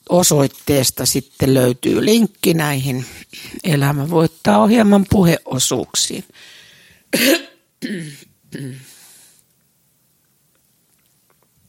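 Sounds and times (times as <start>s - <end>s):
speech: 0.1s - 8.9s
person coughing harshly: 7.1s - 8.9s.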